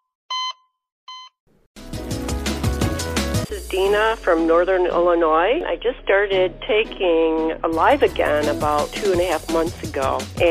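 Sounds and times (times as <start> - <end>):
short bright electronic beeps: 0.3 - 1.4
loud dense burst of music-like sound: 1.8 - 10.4
speech: 3.6 - 10.4.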